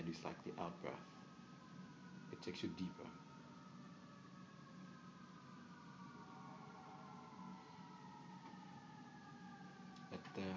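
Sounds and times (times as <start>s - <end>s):
speech: 0.0s - 1.2s, 2.4s - 3.3s, 10.1s - 10.5s
siren wailing: 0.0s - 10.5s.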